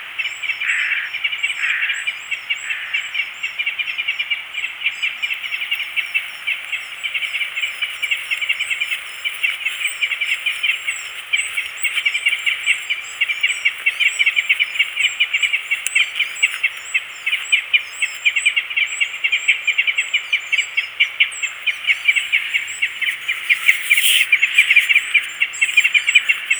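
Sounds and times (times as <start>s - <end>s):
crossbills calling: 0.0s - 26.5s.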